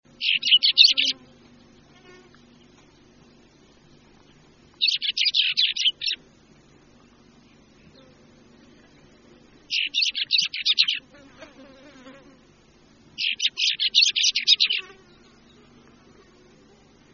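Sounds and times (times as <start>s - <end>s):
tractrac chat singing: 0.1s - 6.2s, 6.9s - 11.1s, 13.2s - 16.4s.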